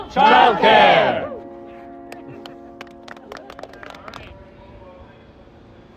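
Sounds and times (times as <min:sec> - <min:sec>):
speech: 0:00.1 - 0:01.3
F subway train rumbling along the rails: 0:03.3 - 0:05.9.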